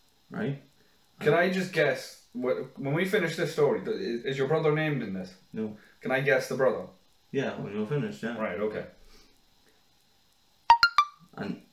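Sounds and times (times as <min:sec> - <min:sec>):
speech: 0:00.3 - 0:09.0, 0:11.4 - 0:11.7
mobile phone sharp electronic beep: 0:10.7 - 0:11.2.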